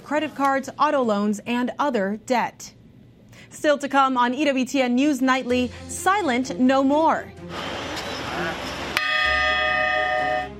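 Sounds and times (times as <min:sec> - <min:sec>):
speech: 0:00.1 - 0:02.8, 0:03.4 - 0:07.7
loud cathedral bell strike: 0:09.0 - 0:10.5.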